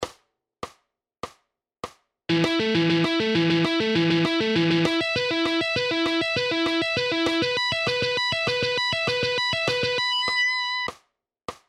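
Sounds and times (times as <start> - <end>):
pentatonic scale guitar licks: 2.3 - 10.9.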